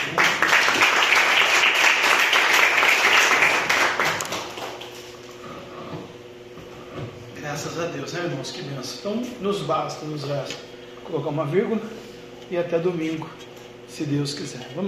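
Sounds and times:
audience applauding: 0:00.0 - 0:05.0
speech: 0:07.8 - 0:13.4, 0:14.0 - 0:14.8.

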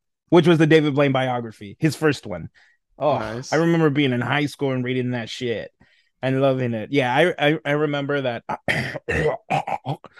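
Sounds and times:
speech: 0:00.3 - 0:10.1
person clearing throat: 0:08.5 - 0:10.1.

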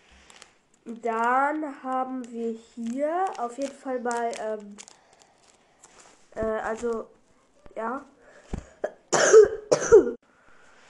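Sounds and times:
speech: 0:00.8 - 0:04.9, 0:06.4 - 0:07.2, 0:07.8 - 0:08.1
person coughing harshly: 0:08.6 - 0:10.2.

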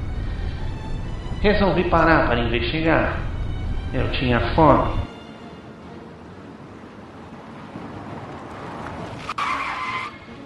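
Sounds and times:
car engine rumbling: 0:00.0 - 0:10.4
car tires squealing as the car skids to a stop while parking at a roadside motel: 0:00.0 - 0:10.4
speech: 0:01.4 - 0:03.3, 0:03.9 - 0:05.0.

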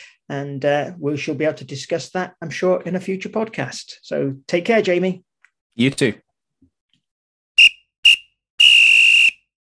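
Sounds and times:
speech: 0:00.3 - 0:06.2
referee's final whistle blasts: 0:07.6 - 0:09.4.

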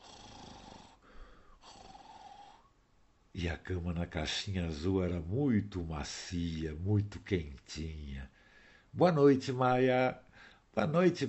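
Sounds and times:
snoring in a henhouse: 0:00.0 - 0:02.7
speech: 0:03.4 - 0:11.2.

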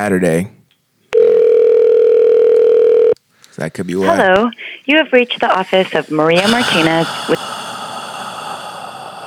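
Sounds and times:
speech: 0:00.0 - 0:00.6, 0:03.6 - 0:07.4
telephone ring tone on an outgoing call: 0:01.2 - 0:03.2.

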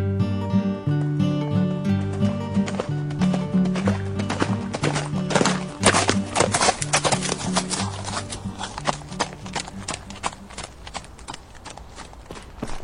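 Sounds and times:
horse hooves clopping as someone rides across church property: 0:00.2 - 0:12.8.

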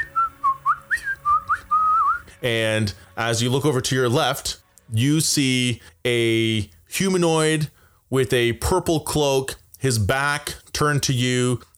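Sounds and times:
person whistling a tune: 0:00.0 - 0:02.4
speech: 0:02.4 - 0:11.7.

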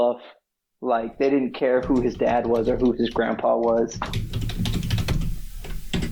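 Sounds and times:
speech: 0:00.0 - 0:04.4
typing on a computer keyboard: 0:01.8 - 0:06.0.

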